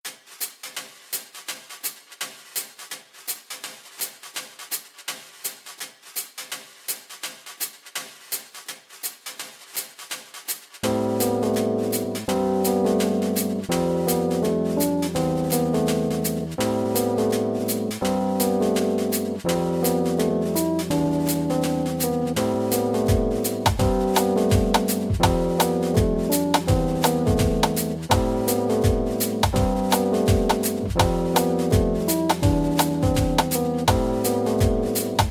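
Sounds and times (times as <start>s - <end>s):
swing music tuned to 432 Hz: 10.8s - 35.3s.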